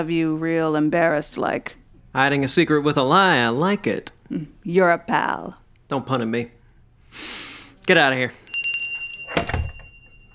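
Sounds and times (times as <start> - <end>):
speech: 0.0 - 8.4
door swinging and shutting with a thunk: 9.3 - 9.8
door clatter: 9.3 - 9.9.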